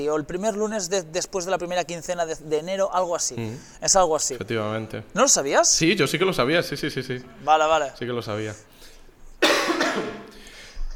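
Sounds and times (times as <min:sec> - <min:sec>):
speech: 0:00.0 - 0:08.9
single harsh raspy cough: 0:09.4 - 0:10.8.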